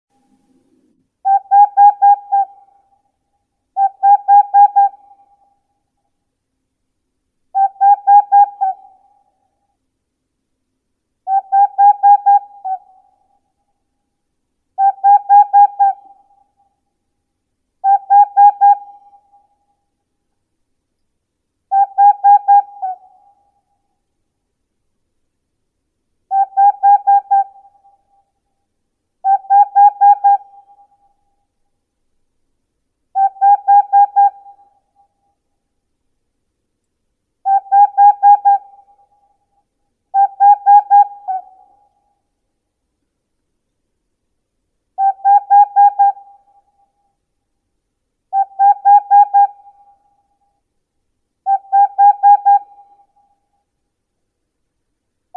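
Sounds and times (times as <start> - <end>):
Aegolius funereus: 1.2 - 3.0, 3.8 - 5.6, 7.5 - 9.4, 11.3 - 13.4, 14.8 - 16.7, 17.8 - 19.5, 21.7 - 23.6, 26.3 - 28.2, 29.2 - 31.2, 33.1 - 35.1, 37.4 - 39.4, 40.1 - 42.1, 45.0 - 47.1, 48.3 - 50.4, 51.4 - 53.4.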